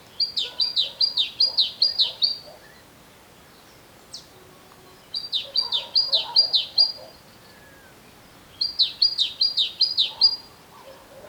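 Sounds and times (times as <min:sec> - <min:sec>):
great tit Parus major singing: 0:00.1 - 0:02.8, 0:05.0 - 0:07.5, 0:08.5 - 0:10.5.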